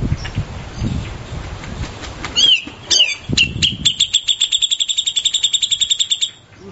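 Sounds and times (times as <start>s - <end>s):
Grey-cheeked bulbul slurred notes and ticking chirps: 2.4s - 6.5s.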